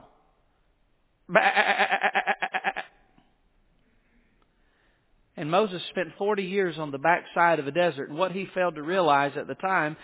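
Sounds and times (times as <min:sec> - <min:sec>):
speech: 0:01.3 - 0:02.0, 0:05.4 - 0:10.0
sheep bleating: 0:01.3 - 0:03.0.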